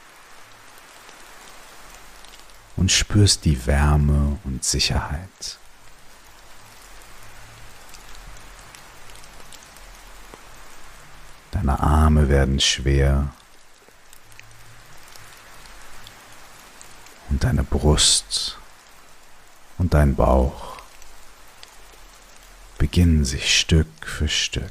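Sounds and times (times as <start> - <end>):
soft steady distant rain: 0.0 - 24.7
speech: 2.8 - 5.6, 11.6 - 13.4, 17.4 - 18.6, 19.8 - 20.7, 22.8 - 24.7.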